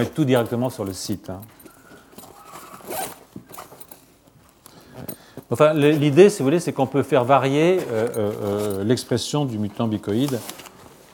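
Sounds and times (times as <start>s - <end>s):
speech: 0.0s - 1.6s, 5.5s - 10.6s
soft rustling and handling of a bag: 0.0s - 11.1s
zipper pulled open on a bag: 2.2s - 4.0s.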